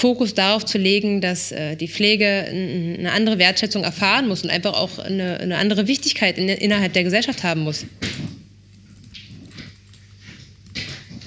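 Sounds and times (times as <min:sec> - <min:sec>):
speech: 0:00.0 - 0:08.3
cat scratching against a surface: 0:08.0 - 0:11.2.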